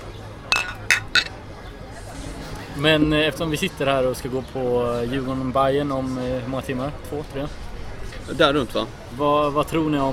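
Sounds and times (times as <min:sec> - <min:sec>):
faint murmur: 0:00.0 - 0:10.1
glasses clinking in a toast: 0:00.5 - 0:01.4
speech: 0:02.8 - 0:07.6, 0:08.3 - 0:10.1.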